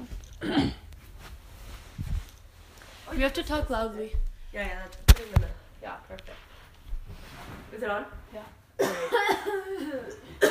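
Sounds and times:
person coughing: 0:00.4 - 0:00.9, 0:08.8 - 0:10.4
speech: 0:03.2 - 0:06.5, 0:07.7 - 0:10.4.

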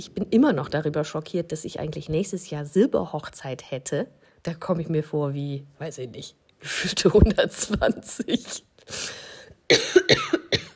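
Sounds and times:
speech: 0:00.0 - 0:09.8
fit of raspy hacking coughing: 0:08.2 - 0:10.7.

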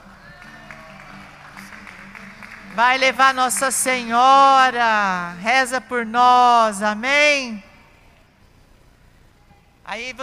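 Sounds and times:
audience at a prayer group clapping: 0:00.0 - 0:04.4
speech: 0:02.8 - 0:07.7, 0:09.9 - 0:10.2.

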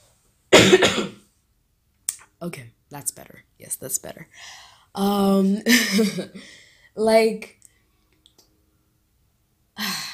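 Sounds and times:
wet harsh cough to clear phlegm from throat: 0:00.5 - 0:01.2
speech: 0:02.4 - 0:07.6.

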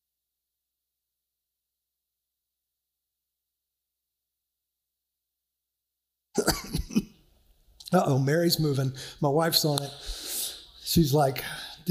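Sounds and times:
man clearing throat: 0:06.4 - 0:07.2
man coughing: 0:06.4 - 0:07.2
speech: 0:07.9 - 0:10.2, 0:10.9 - 0:11.8.

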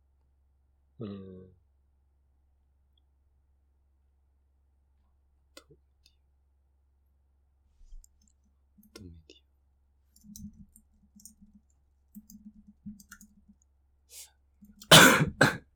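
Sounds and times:
speech: 0:01.0 - 0:01.6
brief throat-clearing rasp: 0:14.9 - 0:15.6
single loud cough: 0:14.9 - 0:15.6.

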